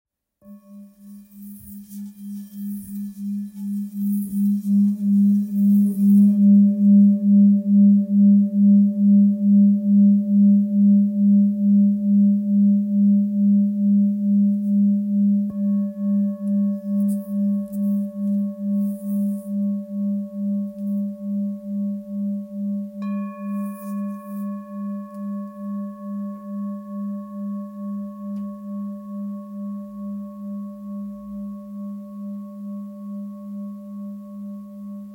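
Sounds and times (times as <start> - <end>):
thick bowl tone in G sharp: 0.4 - 35.1.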